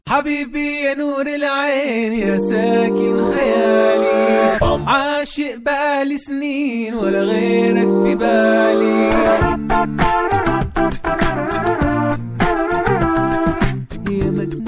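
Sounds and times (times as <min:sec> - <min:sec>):
speech: 0:00.1 - 0:10.3
layered a cappella sung harmonies with vibrato from Saudi Arabia: 0:02.1 - 0:05.1, 0:07.0 - 0:09.6
crisp rhythmic mouth-percussion hits: 0:02.2 - 0:05.0, 0:07.8 - 0:14.6.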